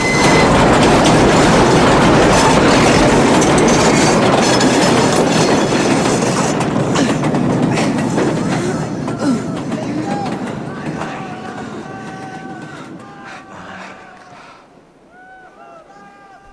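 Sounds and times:
faint metallic squeals of train wheels: 0:00.0 - 0:06.2
train crossing a bridge in fog: 0:00.0 - 0:15.0, 0:16.0 - 0:16.5.

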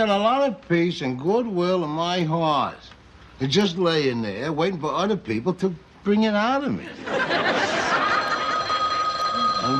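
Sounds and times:
speech: 0:00.0 - 0:07.8
room noise: 0:00.0 - 0:09.7
laughter: 0:06.8 - 0:09.4
telephone bell ringing: 0:07.4 - 0:09.7.

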